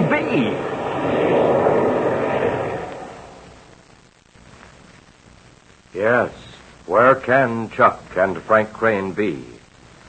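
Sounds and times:
airplane engines throttling down for landing: 0:00.0 - 0:03.8
speech: 0:06.0 - 0:09.6.

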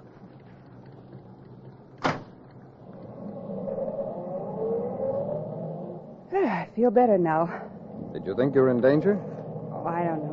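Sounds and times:
car engine revving and car pulling away: 0:02.5 - 0:06.4, 0:07.4 - 0:10.3
speech: 0:06.4 - 0:07.6, 0:08.2 - 0:10.3.

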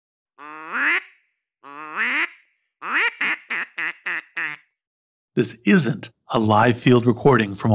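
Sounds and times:
duck call instrument quacking: 0:00.4 - 0:04.8
speech: 0:05.4 - 0:07.7.

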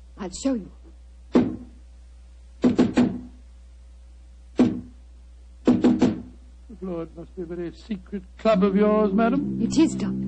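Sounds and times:
speech: 0:00.2 - 0:00.8, 0:06.8 - 0:10.2
sharp knocks on a solid wooden door: 0:02.6 - 0:03.3, 0:05.7 - 0:06.3
low hum: 0:08.4 - 0:10.2.

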